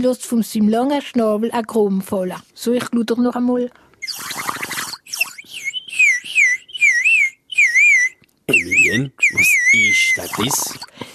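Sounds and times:
speech: 0.0 - 4.3, 8.9 - 11.0
water whistle imitating a cuckoo call: 4.0 - 10.9.

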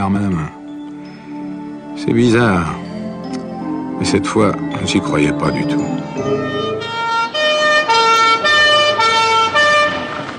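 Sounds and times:
speech: 0.1 - 0.6, 2.0 - 2.8, 4.0 - 7.0
two-tone high-low emergency vehicle siren in Paris: 6.2 - 10.3.

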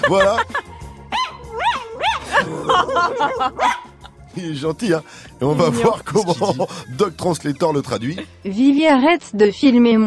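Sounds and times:
speech: 0.0 - 0.6, 2.4 - 3.8, 4.4 - 10.0
laughter: 0.0 - 0.9, 2.2 - 4.3, 5.4 - 8.3
dog making warbling howl-like yelps: 1.1 - 3.9.

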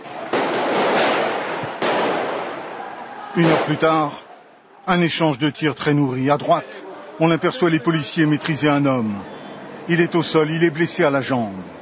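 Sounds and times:
police grenades exploding: 0.0 - 4.1
speech: 3.4 - 11.7.

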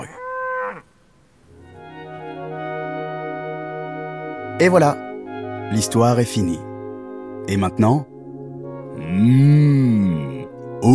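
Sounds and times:
cow mooing: 0.0 - 0.8, 8.9 - 10.6
speech: 4.6 - 5.0, 5.7 - 6.7, 7.4 - 8.1, 9.2 - 10.9.

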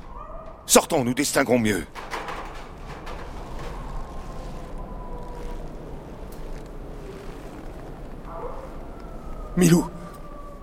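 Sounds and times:
dog howling: 0.0 - 0.7, 4.0 - 10.6
speech: 0.7 - 2.2, 9.6 - 9.9.

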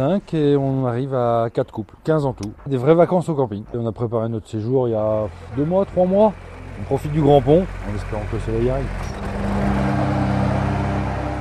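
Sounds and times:
speech: 0.0 - 9.5
ride-on lawn mower engine running while mowing campsite grass: 5.2 - 11.3.

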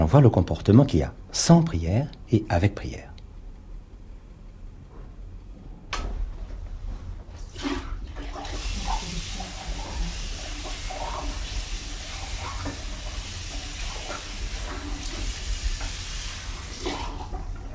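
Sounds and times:
speech: 0.0 - 3.1
clean water being poured into a container: 7.5 - 17.6.

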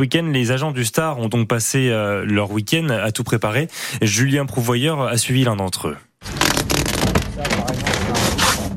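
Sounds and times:
speech: 0.0 - 6.7, 7.4 - 8.6
paper poster being pulled off a bus-stop display board: 6.2 - 8.7.

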